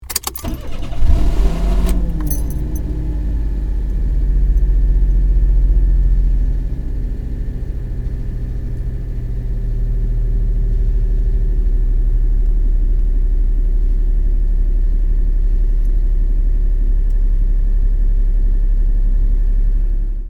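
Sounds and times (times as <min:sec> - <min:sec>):
kei car engine: 0:00.0 - 0:20.2.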